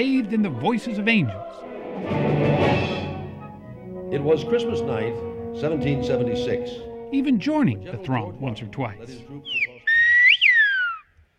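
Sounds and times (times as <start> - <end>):
speech: 0.0 - 2.9, 4.1 - 9.7
phrase in the Canary Islands whistled language: 9.4 - 11.1.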